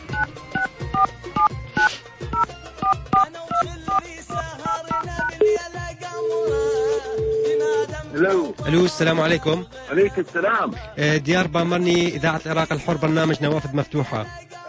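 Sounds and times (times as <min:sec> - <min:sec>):
touch-tone telephone dialing beeps: 0:00.1 - 0:05.6, 0:06.2 - 0:07.8
speech: 0:08.7 - 0:14.4.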